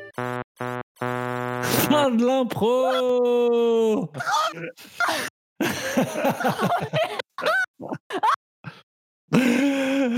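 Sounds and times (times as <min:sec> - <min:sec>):
speech: 0:01.6 - 0:05.3, 0:06.0 - 0:07.5
laughter: 0:04.1 - 0:08.4, 0:09.3 - 0:10.1
short vocal bursts and grunts: 0:09.4 - 0:10.1.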